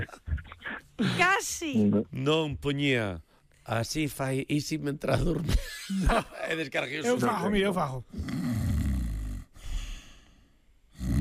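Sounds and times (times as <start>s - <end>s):
speech: 1.0s - 8.4s
person imitating snoring with their voice: 8.1s - 9.5s, 11.0s - 11.2s.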